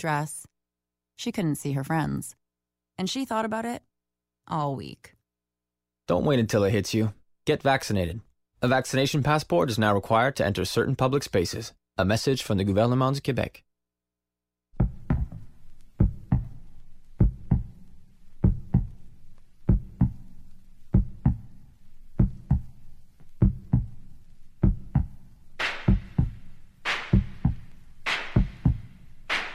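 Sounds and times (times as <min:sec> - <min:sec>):
speech: 0:00.0 - 0:00.4, 0:01.2 - 0:02.4, 0:03.0 - 0:03.9, 0:04.5 - 0:05.2, 0:06.1 - 0:13.7
pumping heartbeat thumping in deep double beats: 0:14.8 - 0:16.6, 0:17.2 - 0:17.8, 0:18.4 - 0:19.0, 0:19.7 - 0:20.3, 0:20.9 - 0:21.6, 0:22.2 - 0:24.0, 0:24.6 - 0:29.5.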